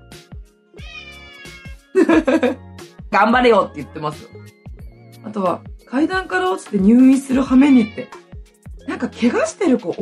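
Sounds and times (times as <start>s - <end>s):
domestic cat meowing: 0.8s - 1.9s, 7.5s - 8.3s
laughter: 2.0s - 2.6s
speech: 2.0s - 4.6s, 5.2s - 8.2s, 8.9s - 10.0s.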